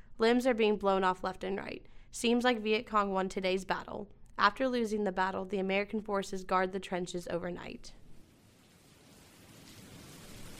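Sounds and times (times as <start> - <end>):
speech: 0.2 - 8.0
steady rain falling over wartime trenches in Vietnam: 8.2 - 10.5.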